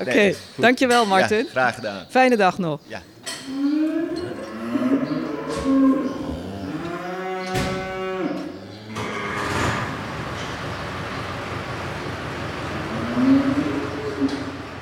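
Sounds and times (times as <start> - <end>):
speech: 0.0 - 3.8
steady farmyard rumble: 3.3 - 14.8
cows mooing at feeding time: 3.4 - 10.4, 12.1 - 14.8.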